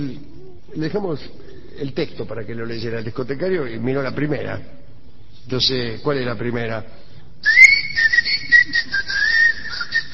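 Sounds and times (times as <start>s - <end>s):
speech: 0.0s - 4.8s, 5.4s - 7.6s
person whistling a tango melody: 7.4s - 10.1s.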